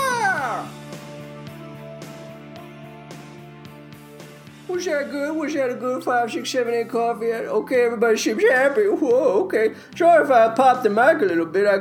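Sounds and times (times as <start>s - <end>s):
cat meowing: 0.0s - 0.8s
speech: 4.7s - 11.8s.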